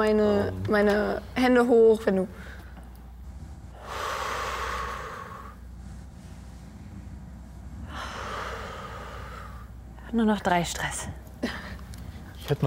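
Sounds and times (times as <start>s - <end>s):
speech: 0.0s - 2.6s, 10.1s - 11.6s, 12.5s - 12.6s
slow deliberate calming breaths: 2.3s - 10.0s.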